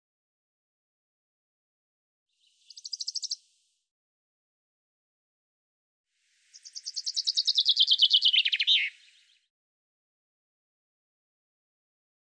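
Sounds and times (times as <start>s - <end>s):
common chaffinch singing: 2.5s - 3.5s, 6.5s - 9.5s.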